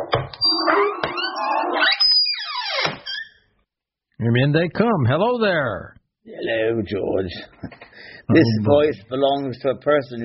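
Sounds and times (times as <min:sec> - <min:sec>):
door creaking open in a long wavering squeal: 0:00.0 - 0:03.5
speech: 0:04.2 - 0:10.2.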